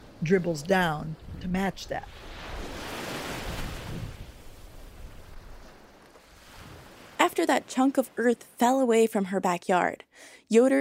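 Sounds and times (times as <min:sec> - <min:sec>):
speech: 0:00.2 - 0:02.4, 0:07.2 - 0:10.7
ocean wave crashing onto the shore: 0:02.0 - 0:05.5.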